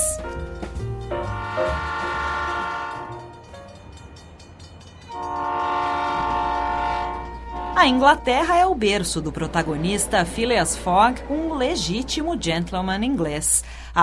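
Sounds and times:
train pulling away with low rumble: 0:00.0 - 0:14.0
train horn blasts: 0:01.2 - 0:03.5, 0:05.1 - 0:09.1
speech: 0:01.6 - 0:02.0, 0:07.8 - 0:14.0.

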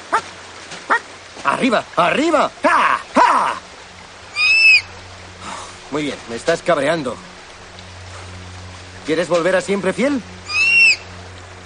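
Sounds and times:
steady low hum: 0:00.0 - 0:11.6
speech: 0:01.5 - 0:02.8, 0:06.0 - 0:07.3, 0:09.1 - 0:10.4
bird whistle-like call: 0:04.3 - 0:05.0, 0:10.4 - 0:11.2.

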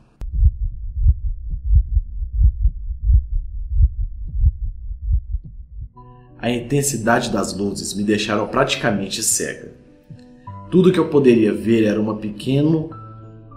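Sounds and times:
deep heartbeat thumping in pairs: 0:00.2 - 0:06.0
speech: 0:06.4 - 0:09.8, 0:10.7 - 0:13.0.

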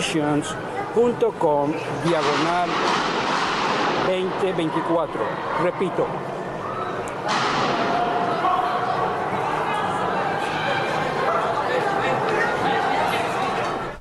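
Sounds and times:
murmur of many voices inside a church during a service: 0:00.0 - 0:13.9
speech: 0:00.1 - 0:03.1, 0:04.0 - 0:06.4
sharp bangs inside a church: 0:02.0 - 0:05.6, 0:07.2 - 0:09.6
loud gunshot inside a church: 0:02.1 - 0:04.4, 0:07.3 - 0:08.3.

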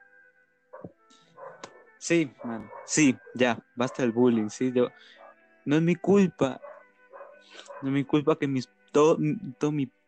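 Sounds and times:
neighborhood dogs barking: 0:00.8 - 0:01.8, 0:02.4 - 0:04.2, 0:05.1 - 0:05.4, 0:06.6 - 0:08.0
speech: 0:02.0 - 0:06.7, 0:07.4 - 0:10.0.

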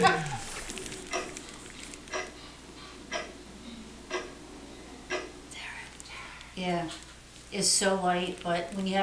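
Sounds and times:
low hum: 0:00.0 - 0:09.0
battery-powered clock ticking: 0:01.1 - 0:02.4, 0:03.1 - 0:03.4, 0:04.1 - 0:04.4, 0:05.0 - 0:05.3
speech: 0:06.6 - 0:09.0.

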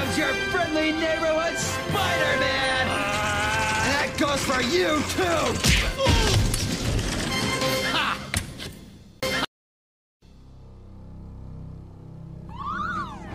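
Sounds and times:
speech: 0:00.1 - 0:03.1, 0:04.2 - 0:05.9
loud chaotic crash and clatter: 0:03.1 - 0:07.8
low hum: 0:10.3 - 0:13.3.

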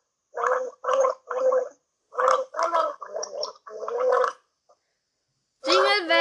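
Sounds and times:
person gargling water to a song melody: 0:00.4 - 0:04.4, 0:05.7 - 0:06.0.

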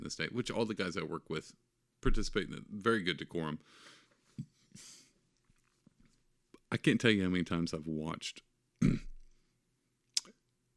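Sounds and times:
speech: 0:00.1 - 0:05.0, 0:06.7 - 0:09.1
person burping into the microphone: 0:08.8 - 0:09.2.

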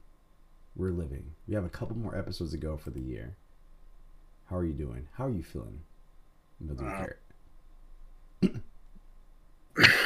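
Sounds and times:
speech: 0:00.8 - 0:03.4, 0:04.5 - 0:05.9, 0:06.6 - 0:07.2
person coughing: 0:08.4 - 0:08.7, 0:09.8 - 0:10.0.

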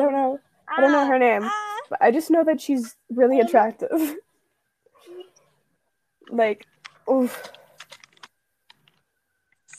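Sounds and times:
speech: 0:00.8 - 0:04.2, 0:06.3 - 0:07.6
clacky keystrokes on a computer keyboard: 0:06.7 - 0:09.0.

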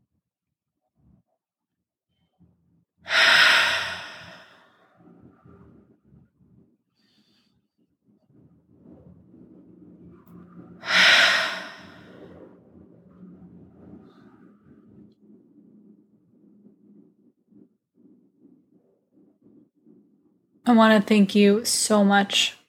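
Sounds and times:
faint low rumble: 0:02.5 - 0:06.8, 0:08.0 - 0:22.2
deep slow breathing in a guided breathing exercise: 0:03.1 - 0:06.0, 0:10.8 - 0:20.2
speech: 0:20.7 - 0:22.6.

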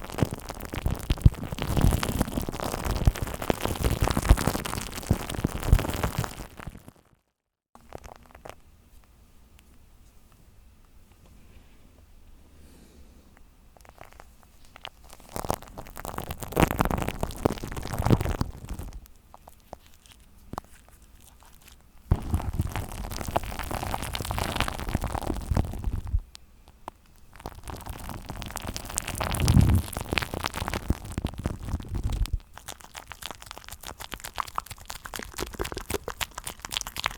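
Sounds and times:
shaving foam crackling and squelching against a microphone: 0:00.0 - 0:07.0, 0:13.8 - 0:26.2, 0:27.1 - 0:37.1.

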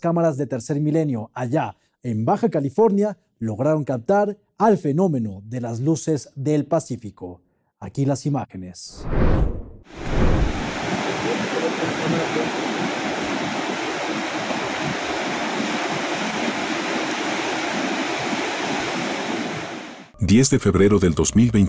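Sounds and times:
speech: 0:00.0 - 0:09.5, 0:20.3 - 0:21.6
Pacific Ocean surf off the beaches of Baja California at night: 0:09.1 - 0:20.1
windy hiss: 0:09.9 - 0:20.1.

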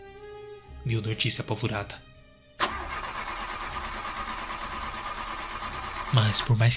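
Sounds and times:
speech: 0:00.8 - 0:02.1, 0:06.1 - 0:06.7
car engine starter cranking but failing to start: 0:02.6 - 0:06.7.

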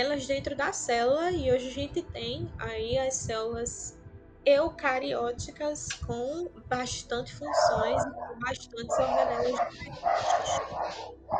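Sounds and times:
speech: 0:00.0 - 0:11.3
dog barking: 0:07.5 - 0:11.3.

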